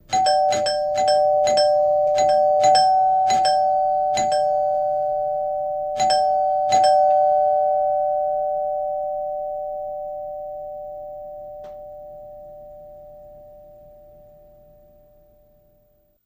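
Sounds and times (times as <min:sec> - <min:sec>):
doorbell ringing: 0:00.0 - 0:16.0.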